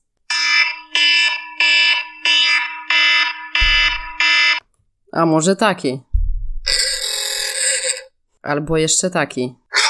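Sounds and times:
harsh alarm clock ringing in buzzy bursts: 0.3s - 4.6s, 6.7s - 8.0s
speech: 5.2s - 6.1s, 8.4s - 9.7s.

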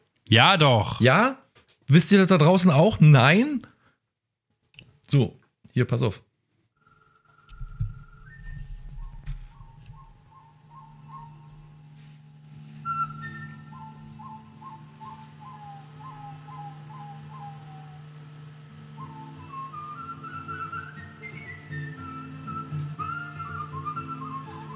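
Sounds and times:
speech: 0.3s - 3.7s, 5.1s - 6.3s
person whistling a melody: 7.4s - 11.8s, 12.8s - 18.0s, 18.9s - 24.7s
low steady backing drone: 7.5s - 21.3s.

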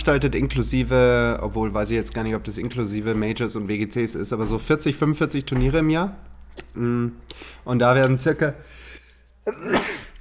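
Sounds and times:
speech: 0.0s - 10.1s
person sneezing: 9.4s - 10.2s.

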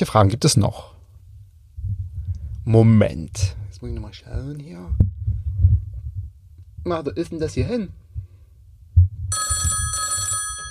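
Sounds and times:
speech: 0.0s - 1.0s, 2.6s - 5.8s, 6.8s - 8.0s
low thumping rumble: 1.2s - 9.8s
telephone bell ringing: 9.3s - 10.7s.

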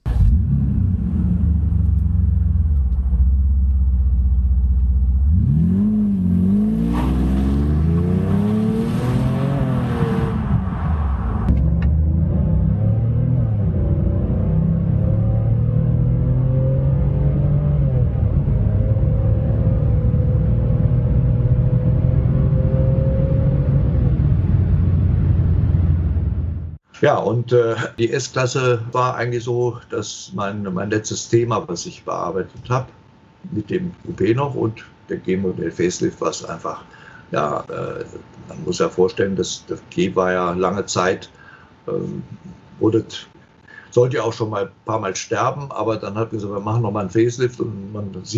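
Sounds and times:
7-litre V12 engine of a Mercedes W140 AMG with AMG exhaust revving: 0.0s - 26.8s
speech: 27.0s - 43.3s, 43.9s - 48.3s.

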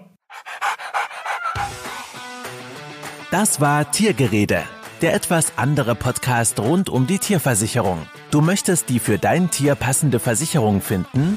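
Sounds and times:
dog panting in quick rhythmic huffs: 0.2s - 2.2s
music: 0.6s - 11.3s
speech: 3.3s - 11.3s.

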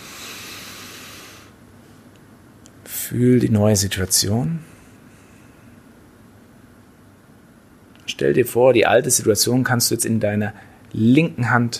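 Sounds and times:
deep inhale through the nose: 0.0s - 1.6s
speech: 3.1s - 4.8s, 8.2s - 11.7s.

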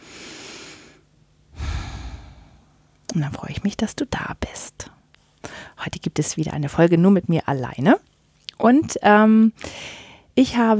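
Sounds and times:
slow deep breath in and out: 0.0s - 2.9s
speech: 3.2s - 4.9s, 5.8s - 10.7s.

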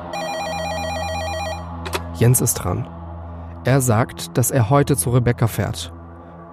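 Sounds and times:
telephone ringing with a rapid electronic trill: 0.1s - 1.7s
speech: 2.2s - 3.0s, 3.6s - 6.0s.

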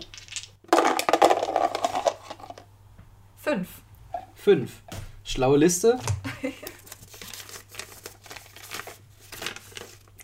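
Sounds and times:
dice rolling and rattling across a hard tabletop: 0.0s - 2.6s
speech: 3.5s - 3.8s, 4.4s - 6.7s.

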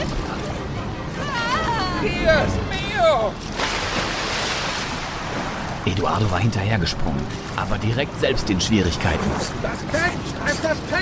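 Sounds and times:
crashing ocean waves with rushing surf: 1.0s - 11.0s
speech: 2.0s - 3.6s, 5.9s - 11.0s.

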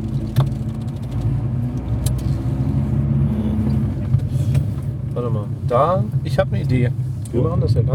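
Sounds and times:
clicks and rattles: 0.0s - 1.3s
car driving past with engine rumbling: 0.0s - 7.9s
speech: 5.2s - 7.9s.

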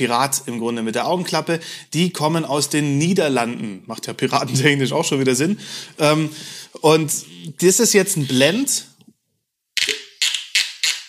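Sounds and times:
speech: 0.0s - 9.0s
cork pulled from a rum bottle: 9.8s - 11.0s.

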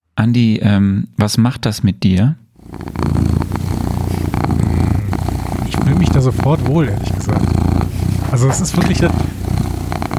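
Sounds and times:
speech: 0.2s - 3.4s, 6.2s - 7.7s, 8.3s - 9.4s
cat purring: 2.6s - 10.1s.

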